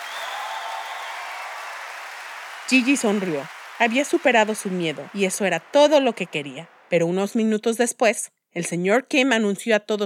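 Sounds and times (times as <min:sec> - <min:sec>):
standing auditorium audience applauding: 0:00.0 - 0:07.4
speech: 0:02.7 - 0:10.0.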